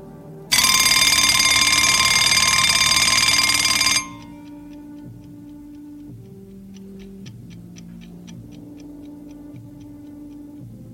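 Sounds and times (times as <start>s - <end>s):
morning alarm clock with harsh high-pitched electronic ring: 0.5s - 5.0s.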